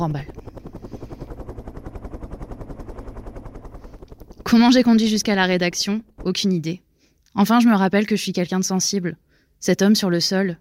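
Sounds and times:
speech: 0:00.0 - 0:00.4, 0:04.5 - 0:06.8, 0:07.4 - 0:10.5
helicopter rotor blades thumping: 0:00.0 - 0:06.8.

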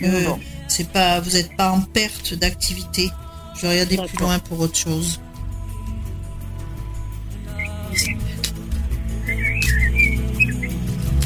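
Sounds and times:
birds singing outdoors in the countryside: 0:00.0 - 0:04.6, 0:07.2 - 0:11.2
speech: 0:00.0 - 0:05.2, 0:08.0 - 0:08.4.

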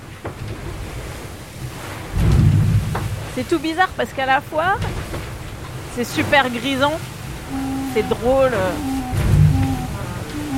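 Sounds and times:
rough sea waves surging around a fast-moving sailboat: 0:00.0 - 0:10.5
speech: 0:03.4 - 0:05.0, 0:06.0 - 0:08.9
heavy rumbling swell: 0:07.3 - 0:10.5.

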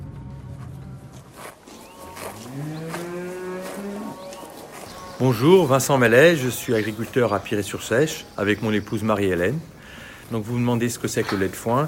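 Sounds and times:
cow mooing in an open pasture in Brittany France: 0:02.1 - 0:05.4
speech: 0:05.2 - 0:09.7, 0:10.3 - 0:11.8.

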